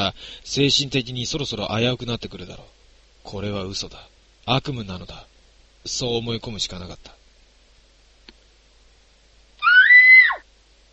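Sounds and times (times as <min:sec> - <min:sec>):
speech: 0:00.0 - 0:07.2
high-pitched woman's scream: 0:09.6 - 0:10.4.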